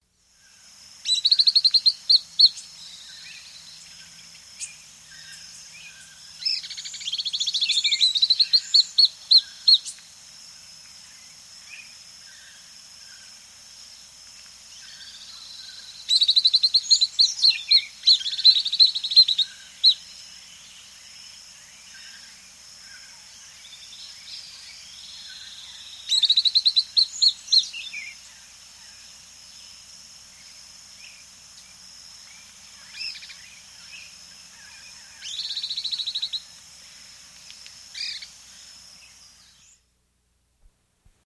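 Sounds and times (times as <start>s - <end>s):
White-ringed flycatcher calling in South America: 0.3s - 10.3s, 14.7s - 39.9s.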